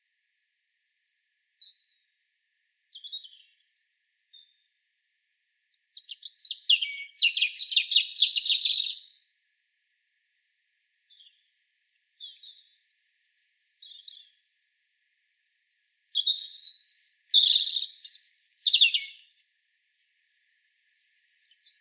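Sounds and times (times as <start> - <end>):
European robin song with trills: 1.6 - 4.7, 5.7 - 9.2, 11.1 - 14.4, 15.7 - 19.4, 21.4 - 21.7.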